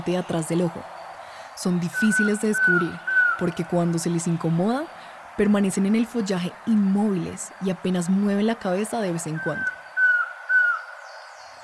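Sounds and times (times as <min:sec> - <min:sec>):
speech: 0:00.0 - 0:01.0, 0:01.6 - 0:09.8
faint hiss: 0:00.0 - 0:11.6
Collared Trogon calling: 0:01.8 - 0:03.6, 0:09.2 - 0:11.6.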